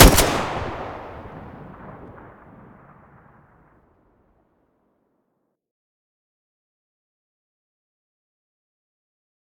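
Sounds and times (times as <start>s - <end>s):
Groza rifle muzzle gunshot in stereo: 0.0s - 3.2s.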